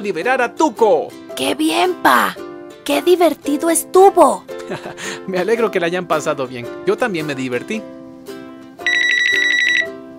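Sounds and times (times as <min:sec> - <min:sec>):
speech: 0:00.0 - 0:08.0
electronic telephone ringtone signalling an incoming call: 0:08.8 - 0:10.0.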